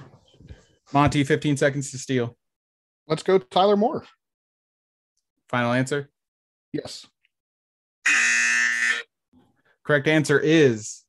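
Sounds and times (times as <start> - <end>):
speech: 0.9 - 2.4, 3.1 - 4.2, 5.5 - 6.1, 6.7 - 7.2, 9.9 - 11.0
game show buzzer: 8.0 - 9.1.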